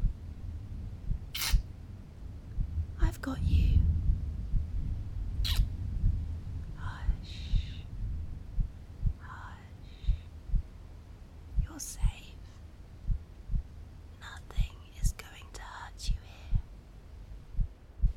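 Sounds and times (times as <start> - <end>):
heartbeat thumping low and slow: 0.0 - 1.3, 2.4 - 16.8, 17.5 - 18.1
soft whispering: 2.9 - 3.9, 6.6 - 8.0, 9.2 - 10.4, 11.6 - 12.7, 14.1 - 16.8
speech: 3.2 - 3.7.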